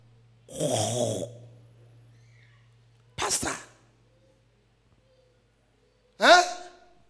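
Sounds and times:
faint low hum: 0:00.0 - 0:07.0
speech: 0:00.5 - 0:01.4
preacher imitating a snore with their voice: 0:00.5 - 0:01.8.

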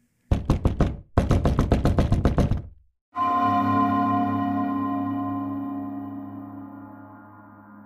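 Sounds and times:
sharp knocking on a door: 0:00.3 - 0:02.8
sustained droning tone: 0:03.2 - 0:07.8.

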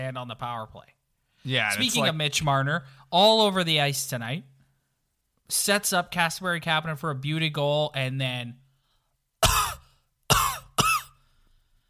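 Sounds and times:
speech: 0:00.0 - 0:04.5, 0:05.5 - 0:08.6
loud harsh coughs: 0:09.4 - 0:11.2.

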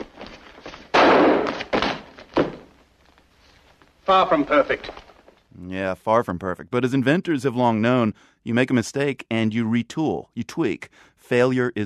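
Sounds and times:
thudding impacts: 0:00.0 - 0:02.8
gunshot fired at a bulletproof uniform: 0:00.9 - 0:02.6
speech: 0:04.1 - 0:05.0, 0:05.6 - 0:11.8.

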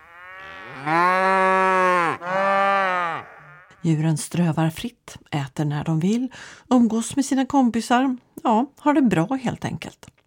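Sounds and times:
cow mooing: 0:00.0 - 0:03.8
speech: 0:03.8 - 0:10.2.

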